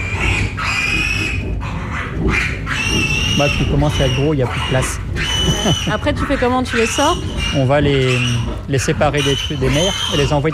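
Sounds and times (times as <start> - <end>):
low rumbling background: 0.0 - 10.5
piglets squealing in a farrowing pen: 0.0 - 10.5
speech: 3.4 - 10.5.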